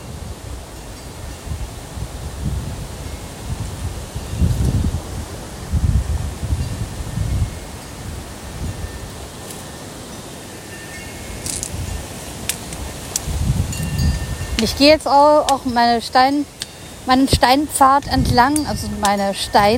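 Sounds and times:
strong gusty wind buffeting the microphone: 0.0s - 19.7s
metallic wind chime tinkling: 5.6s - 19.7s
speech: 14.6s - 19.7s.

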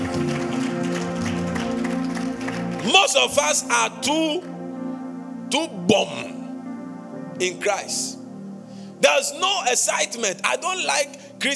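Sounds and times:
audience clapping and cheering: 0.0s - 3.4s
sustained musical tones droning: 0.0s - 11.5s
speech: 2.9s - 4.6s, 5.5s - 6.4s, 7.4s - 8.2s, 9.0s - 11.5s.

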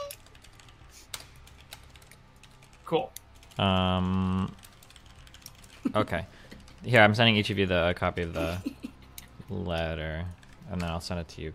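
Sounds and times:
typing a letter on a computer keyboard: 0.0s - 7.4s, 9.8s - 11.0s
speech: 2.9s - 4.6s, 5.8s - 8.8s, 9.5s - 11.5s.

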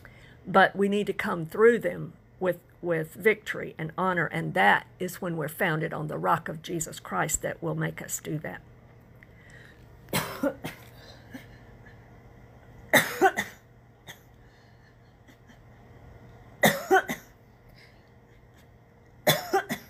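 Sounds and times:
speech: 0.5s - 8.7s, 10.4s - 10.8s
person coughing and clearing throat from a tickle: 10.1s - 11.5s, 12.9s - 14.4s, 16.6s - 17.4s, 19.2s - 19.8s.

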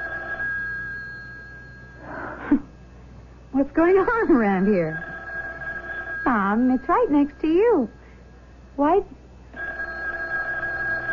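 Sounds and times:
telephone ringing with buzzing electronic tone: 0.0s - 2.2s, 3.9s - 8.1s, 9.5s - 11.1s
speech: 3.6s - 5.1s, 6.2s - 8.0s, 8.8s - 9.2s.

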